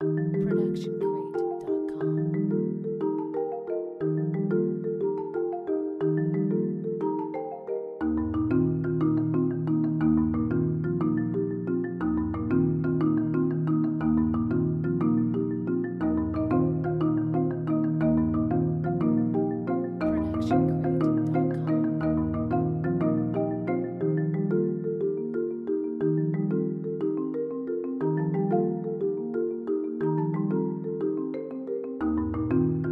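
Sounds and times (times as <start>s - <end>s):
happy marimba music: 0.0s - 32.9s.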